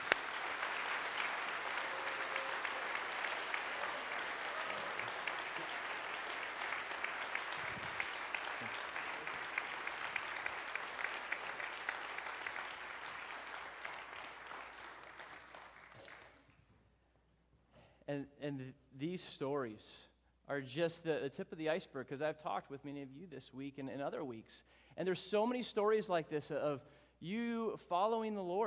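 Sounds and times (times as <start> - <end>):
large audience applause: 0.0 - 16.4
speech: 18.1 - 28.6.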